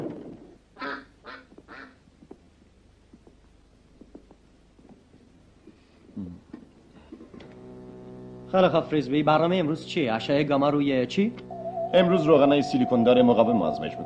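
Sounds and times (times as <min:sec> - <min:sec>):
duck quacking: 0:00.8 - 0:02.0
speech: 0:08.5 - 0:14.0.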